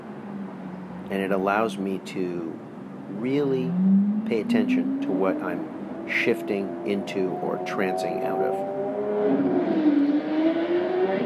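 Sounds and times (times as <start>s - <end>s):
speech: 1.1s - 8.7s, 9.3s - 10.0s
car engine roaring as the car speeds by: 3.6s - 11.2s.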